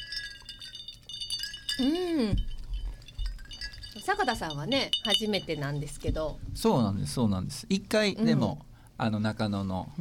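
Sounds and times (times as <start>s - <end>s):
glasses clinking in a toast: 0.0s - 6.3s
speech: 1.8s - 2.5s, 4.0s - 9.9s.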